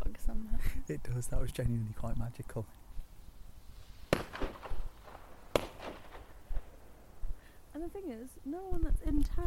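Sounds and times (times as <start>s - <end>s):
speech: 0.9s - 2.8s, 7.8s - 9.4s
brief crackling echo of firework bangs: 2.7s - 7.7s
firework bangs from small cherry red and green bangers outdoors in fog: 3.6s - 7.3s.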